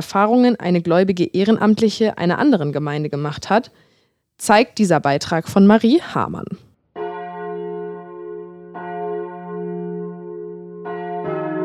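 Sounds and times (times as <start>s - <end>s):
speech: 0.0s - 6.7s
church bells ringing: 7.0s - 11.6s.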